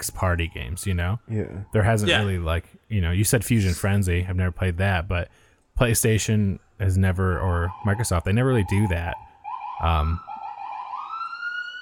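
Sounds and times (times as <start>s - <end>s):
speech: 0.0s - 10.3s
emergency vehicle siren: 7.7s - 11.8s.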